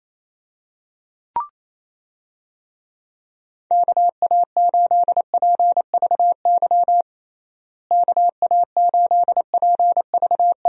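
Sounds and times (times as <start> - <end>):
Morse code tapped out as a steady mid-pitched tone: 3.7 - 7.0, 7.9 - 10.6.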